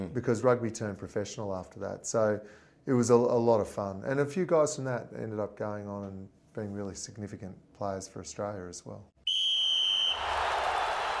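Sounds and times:
speech: 0.0 - 9.2
rugby referee's full time whistle blast: 9.3 - 10.3
crowd roar: 10.1 - 11.1.

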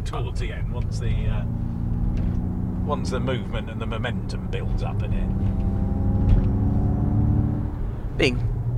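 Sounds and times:
car engine and road rumble heard from inside on a twisty Alpine route: 0.0 - 8.7
speech: 0.1 - 1.7, 2.9 - 5.7, 8.2 - 8.5.

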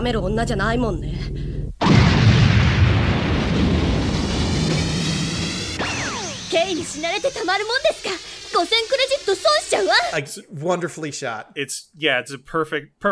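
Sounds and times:
speech: 0.0 - 1.4, 6.5 - 13.1
whoosh: 1.8 - 8.4
rocket launcher explosion blowing up a computer: 1.8 - 9.4
long roaring rumble: 2.5 - 7.3.

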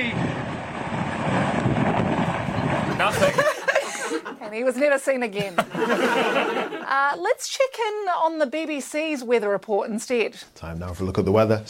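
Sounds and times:
hurricane wind gusts buffeting reporter's microphone: 0.0 - 3.5
laughter: 2.6 - 4.7, 5.3 - 7.1
speech: 4.6 - 11.6.

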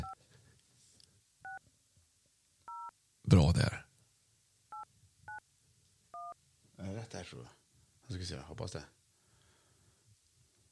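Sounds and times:
phone touch-tone dialing beep: 2.7 - 2.9, 6.2 - 6.4
speech: 3.3 - 3.8, 7.1 - 9.0.

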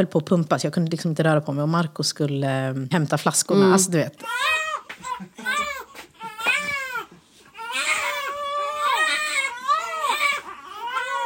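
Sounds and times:
speech: 0.0 - 5.6
several infants wailing: 4.2 - 11.2.

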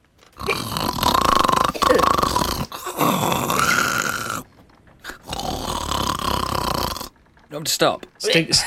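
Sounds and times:
voice imitating drunken snoring with rasping gurgly snorts: 0.4 - 7.2
speech: 7.6 - 8.6.

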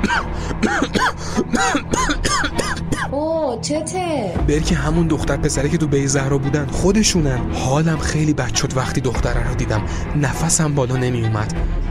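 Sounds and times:
speech: 0.0 - 2.2, 3.2 - 11.8
throat clearing after choking on a piece of chocolate: 0.0 - 3.1
person coughing after choking on chocolate: 0.0 - 3.2.

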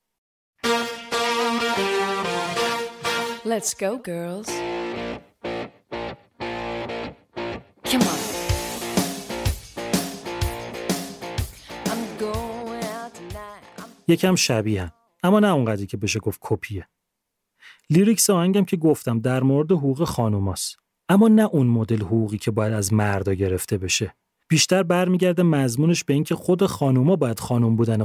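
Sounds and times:
band playing punchy rhythmic chords: 0.6 - 3.5, 4.6 - 14.0
bright twangy guitar riff of a country pop song: 0.6 - 3.7, 4.5 - 14.1
speech: 3.5 - 5.0, 14.1 - 17.0, 17.9 - 28.0.

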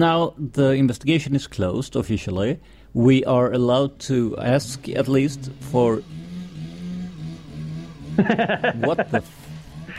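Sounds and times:
speech: 0.0 - 6.2, 8.2 - 9.4
motorcycle engine droning and revving: 4.4 - 9.9
laughter: 8.2 - 9.3.

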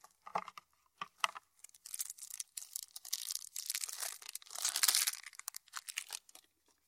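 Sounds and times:
packs of cards for a fairytale-themed card game being unwrapped and opened: 1.6 - 6.4.

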